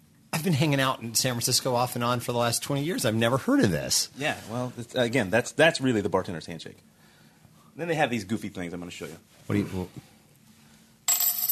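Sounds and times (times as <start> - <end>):
speech: 0.4 - 7.0, 7.8 - 10.1
metal promotional coin dropping onto a countertop: 11.1 - 11.5.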